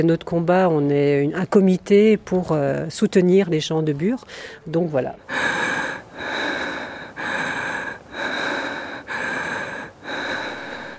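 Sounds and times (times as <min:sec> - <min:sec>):
speech: 0:00.0 - 0:05.8
faint constant tone: 0:00.0 - 0:10.9
deep breathing during a guided breathing exercise: 0:04.3 - 0:04.7, 0:05.3 - 0:10.9.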